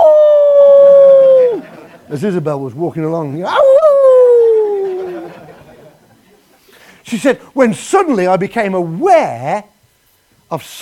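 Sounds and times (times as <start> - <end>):
long steady wolf howl: 0.0 - 1.7, 3.4 - 5.4
laughter: 1.1 - 2.3, 4.2 - 6.6
speech: 2.1 - 3.6, 7.1 - 9.7, 10.5 - 10.8.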